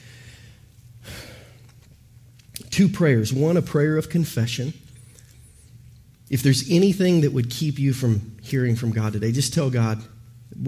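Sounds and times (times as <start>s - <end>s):
deep breath taken during prayer at a church service: 0.0s - 1.6s
steady low hum: 0.0s - 10.6s
speech: 2.8s - 4.8s, 6.3s - 10.6s.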